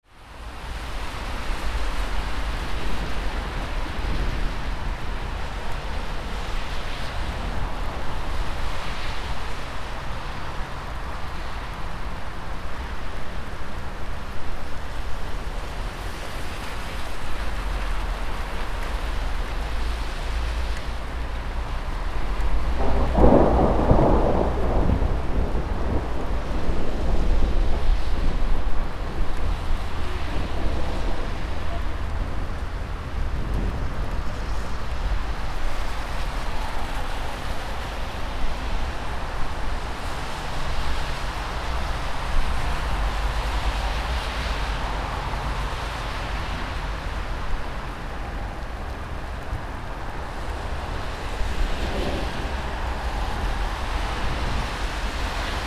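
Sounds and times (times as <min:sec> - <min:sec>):
urban city ambience on a rainy day: 0:00.1 - 0:55.6
distant thunder: 0:22.2 - 0:35.4, 0:51.3 - 0:55.6.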